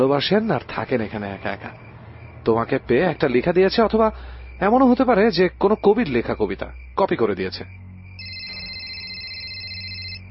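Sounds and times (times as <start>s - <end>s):
speech: 0.0s - 1.8s, 2.4s - 7.8s
high electronic ringtone of a phone with an incoming call: 8.2s - 10.2s.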